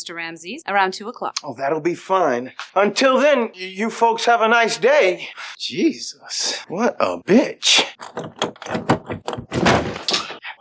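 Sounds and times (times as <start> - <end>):
speech: 0.0 - 9.6
door being forced open with heavy thuds and splintering: 8.0 - 10.4.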